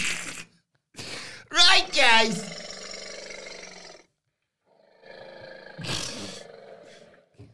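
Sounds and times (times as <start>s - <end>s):
voice imitating an elephant's trumpeting: 1.6s - 4.1s, 4.9s - 7.3s
speech: 1.8s - 2.6s.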